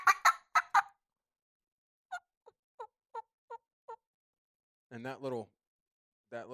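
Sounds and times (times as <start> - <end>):
two turkey hens calling while squabbling and pecking: 0.0 - 0.9
soft turkey hen clucks: 0.0 - 1.0, 2.1 - 4.0
speech: 4.9 - 5.6, 6.3 - 6.5.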